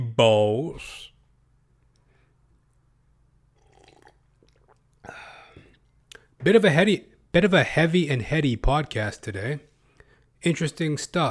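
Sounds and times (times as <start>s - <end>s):
speech: 0.2s - 1.1s, 6.4s - 9.7s, 10.4s - 11.3s
person sipping and swallowing water: 3.5s - 6.3s.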